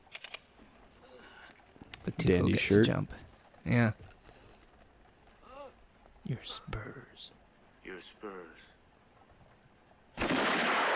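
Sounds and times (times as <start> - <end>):
speech: 2.0 - 4.0, 6.3 - 8.7
gunshot in a film scene aimed at a man's kneecap: 10.2 - 10.9.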